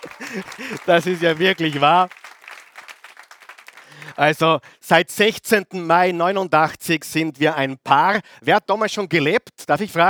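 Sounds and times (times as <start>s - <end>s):
laughter: 0.0s - 2.1s
audience applause of many hands clapping: 0.0s - 4.4s
speech: 0.2s - 2.2s, 4.2s - 10.0s.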